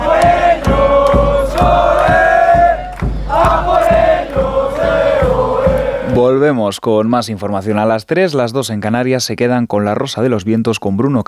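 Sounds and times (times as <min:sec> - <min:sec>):
street crowd of football fans chanting: 0:00.0 - 0:06.4
regular beats: 0:00.0 - 0:06.6
speech: 0:06.4 - 0:11.2.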